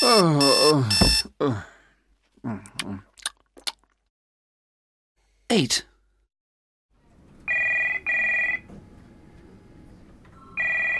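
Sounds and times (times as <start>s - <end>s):
speech: 0.2s - 1.7s, 5.5s - 5.9s
telephone ringing with bright electronic double ring: 7.5s - 8.7s, 10.5s - 10.9s.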